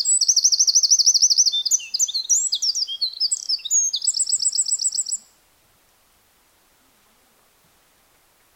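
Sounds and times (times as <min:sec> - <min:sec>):
Eurasian wren Troglodytes troglodytes song with trills and chattering: 0:00.0 - 0:05.4.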